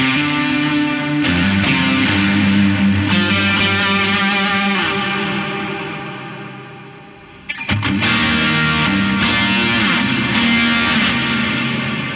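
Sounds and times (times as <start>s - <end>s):
crunchy overdriven electric guitar playing sustained chords: 0.0s - 12.1s.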